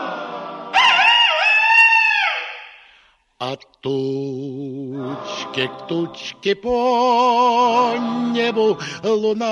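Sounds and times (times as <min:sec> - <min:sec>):
rooster crowing: 0:00.7 - 0:02.9
speech: 0:03.5 - 0:04.4, 0:05.5 - 0:09.5.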